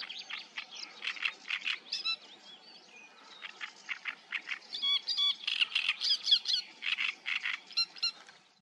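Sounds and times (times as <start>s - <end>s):
great reed warbler song: 0.0s - 8.5s.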